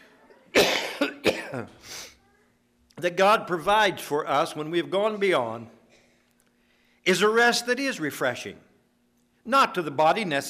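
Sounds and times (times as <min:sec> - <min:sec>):
person coughing: 0:00.5 - 0:01.8
speech: 0:01.5 - 0:02.0, 0:03.0 - 0:05.8, 0:07.0 - 0:08.7, 0:09.4 - 0:10.4.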